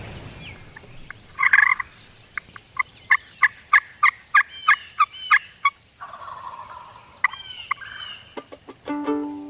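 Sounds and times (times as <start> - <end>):
wild turkey sharp calls: 0.2 - 9.4
wild turkey gobbling outdoors: 1.4 - 1.9, 2.8 - 8.8.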